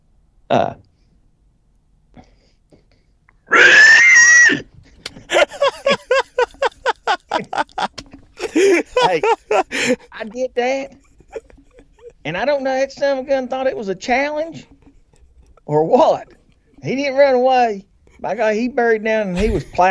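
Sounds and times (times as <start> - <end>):
speech: 0.5 - 0.8, 8.8 - 11.0, 12.2 - 14.7, 15.7 - 19.8
person imitating a pig squeal: 3.5 - 4.7
choppy laughter-like bursts: 5.2 - 12.3, 18.1 - 19.8.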